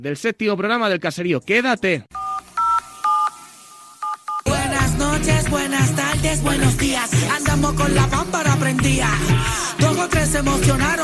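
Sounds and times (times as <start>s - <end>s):
speech: 0.0s - 2.2s, 5.5s - 11.0s
telephone keypad dual-tone beeps dialing a call: 2.2s - 4.5s.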